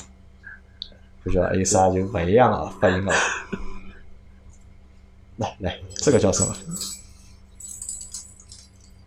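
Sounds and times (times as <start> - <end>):
low steady hum: 0.0 - 9.0
speech: 1.2 - 3.6, 5.4 - 7.0
keys jangling: 5.9 - 9.0.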